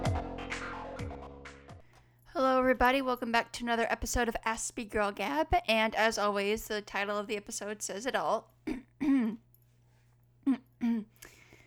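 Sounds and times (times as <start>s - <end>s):
speech: 2.4s - 9.4s, 10.5s - 11.2s
throat clearing: 8.7s - 9.5s, 10.4s - 11.2s.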